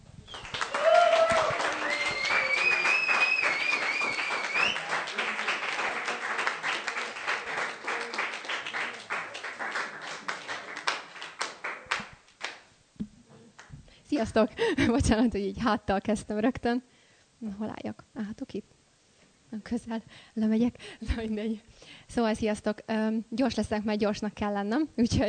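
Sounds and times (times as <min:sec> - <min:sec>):
audience applauding to welcome a speaker: 0:00.3 - 0:12.6
audience whoops and cheers: 0:00.4 - 0:04.9
speech: 0:14.2 - 0:18.8, 0:19.5 - 0:25.2.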